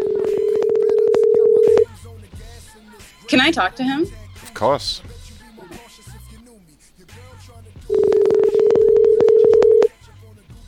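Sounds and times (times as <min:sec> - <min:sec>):
steady electronic phone call tone over an internet call: 0:00.0 - 0:01.9, 0:07.9 - 0:09.9
speech: 0:03.3 - 0:05.1.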